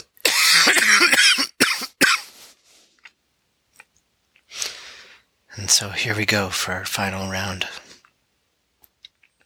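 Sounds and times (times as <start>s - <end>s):
person coughing raspily with throat-clearing: 0.3s - 2.3s
speech: 5.8s - 7.8s.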